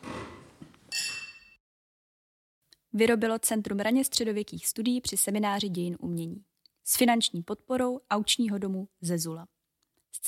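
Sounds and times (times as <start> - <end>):
wine glasses clinking in a toast: 0.9 - 1.6
speech: 2.9 - 10.2.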